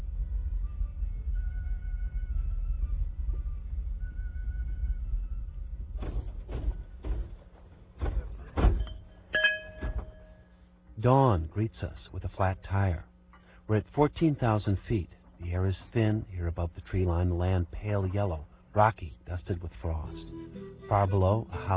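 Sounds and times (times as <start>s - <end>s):
small bus engine drone on mountain road: 0.0s - 21.7s
vehicle clunks and rattles jolting over rough ground: 5.8s - 10.4s
speech: 11.0s - 13.1s, 13.7s - 21.7s.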